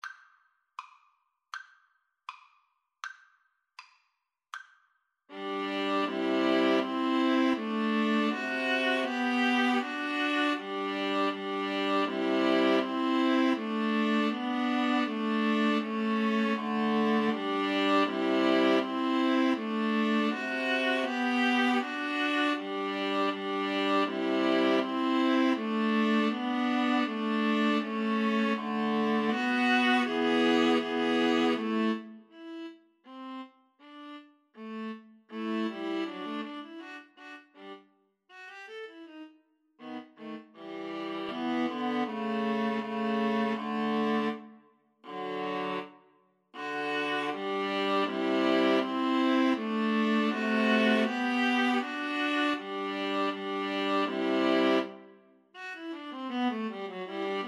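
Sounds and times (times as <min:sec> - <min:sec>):
viola trio playing a gavotte: 0:05.3 - 0:32.7, 0:34.7 - 0:37.1, 0:39.8 - 0:44.4, 0:45.1 - 0:45.9, 0:46.6 - 0:55.0, 0:55.6 - 0:57.4.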